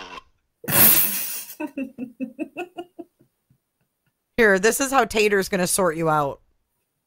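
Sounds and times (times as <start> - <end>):
person snorting: 0.7 - 1.7
short snorting laughs: 0.8 - 3.2
speech: 4.4 - 6.4.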